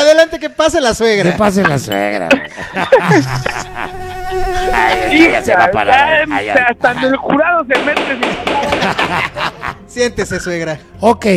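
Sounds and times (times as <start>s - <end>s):
speech: 0.4s - 11.3s
laughter: 1.2s - 7.2s, 8.4s - 9.9s
fly buzzing: 3.2s - 6.4s.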